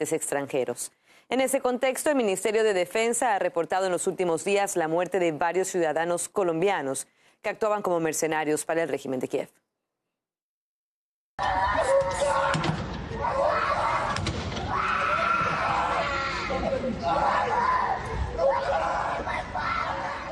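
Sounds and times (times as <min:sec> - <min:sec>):
speech: 0:00.0 - 0:09.6, 0:11.4 - 0:12.2
crowd commotion: 0:11.4 - 0:20.3
girl in Ukraine screaming and wailing as her father is detained: 0:11.4 - 0:20.3
other voices shouting in a scuffle: 0:11.4 - 0:20.3.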